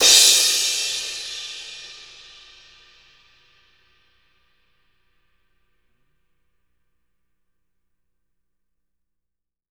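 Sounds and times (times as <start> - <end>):
dual crash: 0.0 - 2.0.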